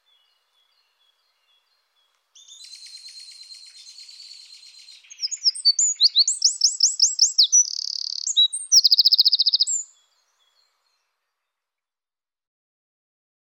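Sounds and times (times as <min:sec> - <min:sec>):
Eurasian wren song: 0:02.4 - 0:10.8.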